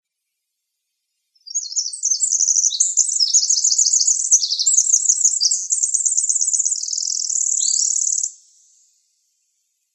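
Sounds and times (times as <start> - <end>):
Winter wren singing in Arizona: 1.4 - 8.8.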